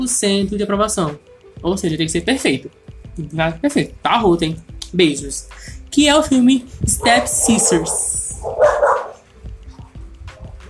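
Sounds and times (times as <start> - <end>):
speech: 0.0 - 8.8
dog barking: 7.0 - 9.3.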